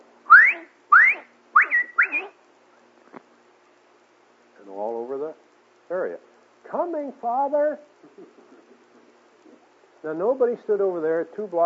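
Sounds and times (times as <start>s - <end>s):
person whistling a loud calling signal outdoors: 0.3s - 2.3s
speech: 7.0s - 7.9s, 10.0s - 11.6s.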